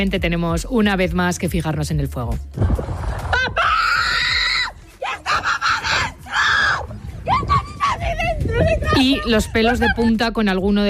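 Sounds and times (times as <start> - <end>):
speech: 0.0 - 3.6, 9.0 - 10.8
woman screaming desperately as flames approach her house: 3.4 - 9.5.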